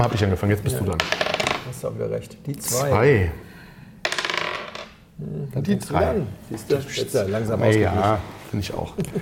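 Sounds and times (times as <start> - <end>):
speech: 0.0 - 3.5, 5.2 - 9.2
dice rolled onto a hard tabletop: 0.9 - 1.7, 4.0 - 5.0.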